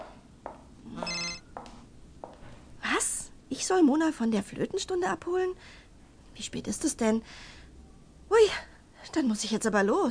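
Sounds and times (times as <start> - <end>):
mobile phone ringing: 1.0 - 1.5
speech: 3.5 - 5.8, 6.4 - 7.6, 8.3 - 10.1.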